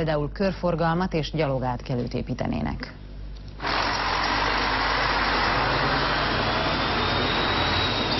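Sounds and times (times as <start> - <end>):
speech: 0.0 - 3.0
trucks passing in town traffic: 4.6 - 8.1.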